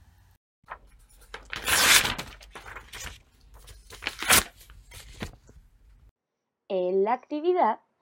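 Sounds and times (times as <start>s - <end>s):
sheet of paper being crumpled and handled: 0.7s - 5.7s
speech: 6.8s - 7.9s.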